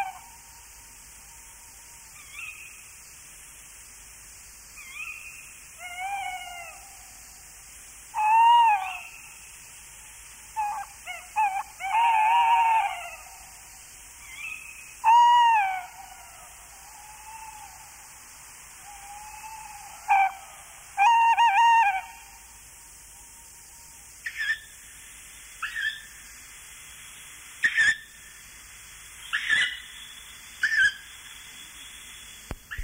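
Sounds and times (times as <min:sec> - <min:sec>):
tawny owl hooting calls: 0:00.0 - 0:00.4, 0:02.2 - 0:02.8, 0:04.8 - 0:07.0, 0:08.1 - 0:09.5, 0:10.5 - 0:18.0, 0:18.8 - 0:22.5, 0:25.6 - 0:26.1, 0:27.6 - 0:28.1, 0:29.2 - 0:30.0, 0:30.6 - 0:31.1.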